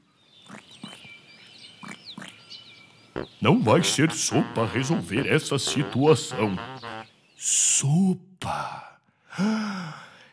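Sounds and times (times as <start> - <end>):
birds chirping and whistling: 0.0 - 7.4
speech: 3.2 - 6.8, 7.8 - 8.2
toad croaking in raspy gargling bursts: 3.2 - 7.1.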